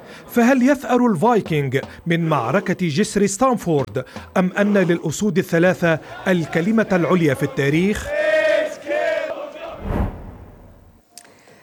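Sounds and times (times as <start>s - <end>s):
speech: 0.2s - 8.2s
football fans cheering and chanting before match: 5.6s - 11.0s
heavy thump: 9.8s - 11.0s.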